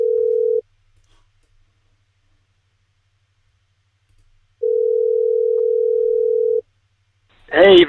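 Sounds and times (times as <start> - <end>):
phone ringback tone: 0.0 - 0.6, 4.6 - 6.6
faint low hum: 0.0 - 7.8
speech: 7.6 - 7.8.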